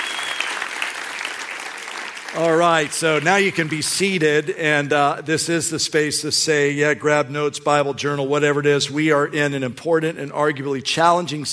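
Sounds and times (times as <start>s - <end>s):
audience applause: 0.0s - 4.2s
speech: 2.3s - 11.5s.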